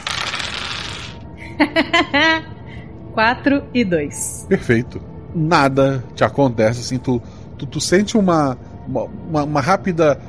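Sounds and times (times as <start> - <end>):
two dice clattering and rattling: 0.0 - 1.2
laughter: 1.5 - 2.5
speech: 1.6 - 2.5, 3.2 - 10.2.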